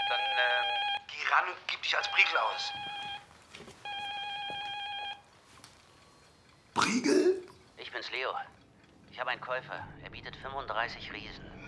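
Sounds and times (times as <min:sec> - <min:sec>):
telephone ringing with a steady electronic tone: 0:00.0 - 0:05.4
speech: 0:01.3 - 0:03.0, 0:06.8 - 0:08.6, 0:09.2 - 0:11.5.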